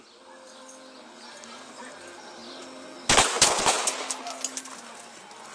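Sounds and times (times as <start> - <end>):
police gunshots: 3.1 - 4.2.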